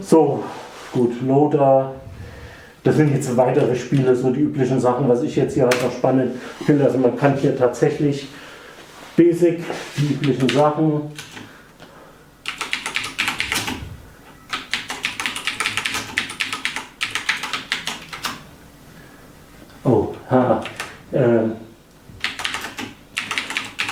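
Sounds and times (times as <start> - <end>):
speech: 0.1 - 2.0, 2.8 - 8.4, 9.2 - 11.3
typing on a German-layout computer keyboard entering BASIC: 10.2 - 11.5, 12.4 - 13.8, 14.5 - 18.4, 20.6 - 21.0, 22.2 - 23.9.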